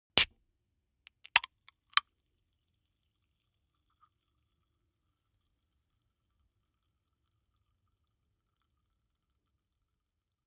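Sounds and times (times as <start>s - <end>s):
soda can opening fizzle: 1.1s - 1.5s.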